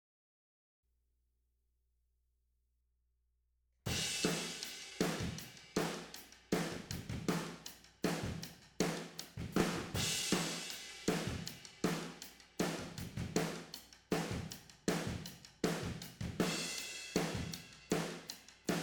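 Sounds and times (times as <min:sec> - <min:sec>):
tom drums recorded with overheads and room microphones: 0:03.9 - 0:18.8.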